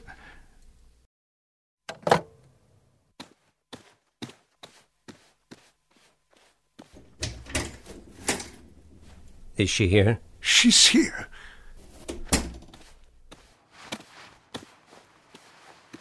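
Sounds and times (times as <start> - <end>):
evenly spaced footsteps: 3.2 - 9.6, 11.8 - 16.0
door opening with rattling and clunking: 7.0 - 9.2, 12.0 - 12.7
speech: 9.6 - 11.3.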